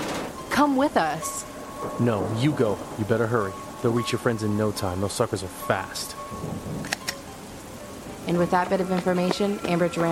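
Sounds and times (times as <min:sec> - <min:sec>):
heavy rain: 0:00.0 - 0:10.1
low rolling rumble: 0:00.0 - 0:10.1
speech: 0:00.6 - 0:07.0, 0:08.2 - 0:10.1
sharp clicks: 0:06.8 - 0:07.2.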